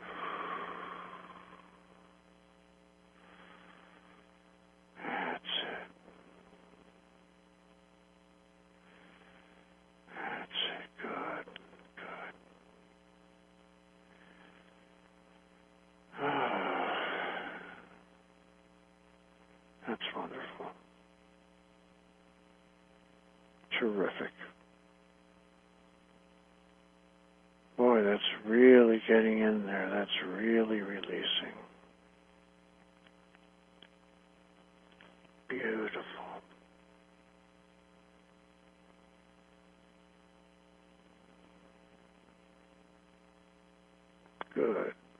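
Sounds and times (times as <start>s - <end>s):
slow heavy breathing exercise: 0.0s - 2.0s, 3.2s - 4.3s, 5.0s - 6.4s, 8.8s - 12.4s, 14.0s - 14.8s, 16.2s - 18.0s
steady low electrical hum: 0.0s - 45.1s
speech: 23.8s - 24.4s.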